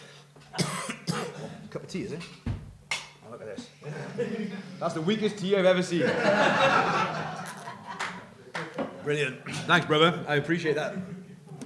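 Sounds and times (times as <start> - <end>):
dry harsh cough: 0.5 - 2.4
speech: 1.7 - 2.5, 3.3 - 7.4, 9.0 - 11.1
laughter: 3.8 - 4.8, 5.9 - 9.1.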